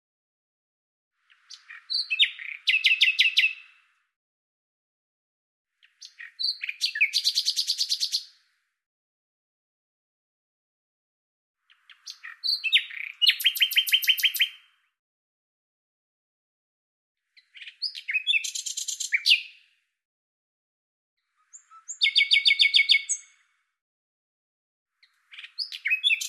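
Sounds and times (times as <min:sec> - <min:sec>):
Common nightingale song: 0:01.2 - 0:03.9, 0:05.8 - 0:08.5, 0:11.6 - 0:14.9, 0:17.3 - 0:19.8, 0:21.2 - 0:23.5, 0:25.0 - 0:26.2.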